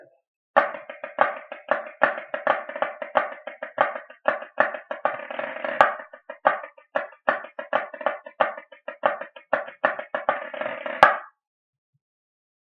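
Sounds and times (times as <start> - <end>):
solo bagadig drum: 0.6 - 5.2, 5.8 - 11.2.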